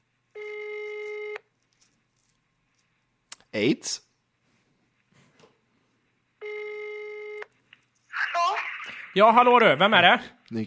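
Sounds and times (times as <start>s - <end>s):
telephone ringback tone heard while calling: 0.4s - 1.4s, 6.4s - 7.4s
speech: 3.6s - 4.1s, 9.2s - 10.6s.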